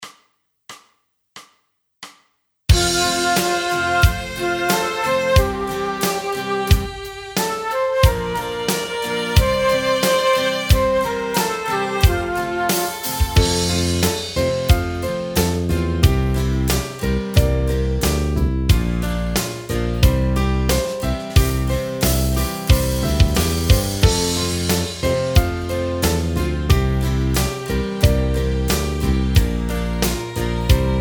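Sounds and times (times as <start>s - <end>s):
instrumental music: 2.7s - 31.0s.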